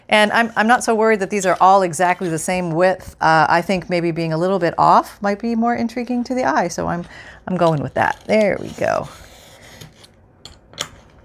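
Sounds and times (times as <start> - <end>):
speech: 0.1 - 9.3
scissors snipping through thin papery material: 7.6 - 10.1.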